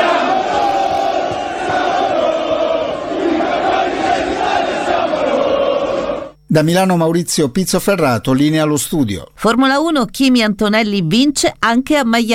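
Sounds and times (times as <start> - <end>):
thousands of football fans chanting and cheering in a city square at night: 0.0 - 6.4
speech: 6.5 - 12.3.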